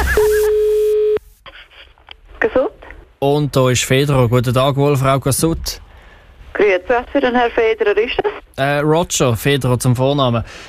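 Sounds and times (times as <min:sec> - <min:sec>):
telephone signal tone beep: 0:00.0 - 0:01.2
faint low noise: 0:00.0 - 0:10.6
speech: 0:03.2 - 0:05.8, 0:06.6 - 0:10.6.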